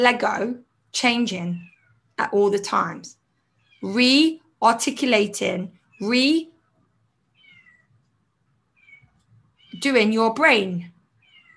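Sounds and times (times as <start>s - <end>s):
speech: 0.0s - 3.2s, 3.8s - 6.5s, 9.8s - 10.9s
kitten meowing to get into a room: 7.4s - 7.9s, 8.8s - 9.9s, 11.2s - 11.5s.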